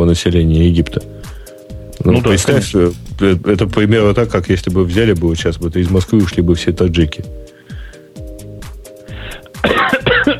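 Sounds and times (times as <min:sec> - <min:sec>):
speech: 0:00.0 - 0:01.2, 0:02.0 - 0:07.5
coughing fit: 0:09.3 - 0:10.3.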